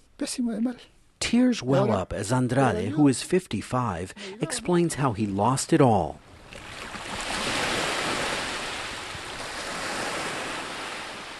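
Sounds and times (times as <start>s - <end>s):
light breeze: 0.0s - 11.3s
speech: 0.2s - 6.2s
soft waves washing onto a tourist beach in the southern hemisphere summer: 6.2s - 11.3s.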